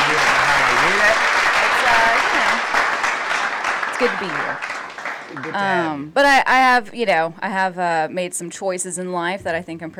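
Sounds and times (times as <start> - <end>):
hands clapping at a comedy show: 0.0 - 5.9
speech: 4.0 - 4.7, 5.3 - 9.9.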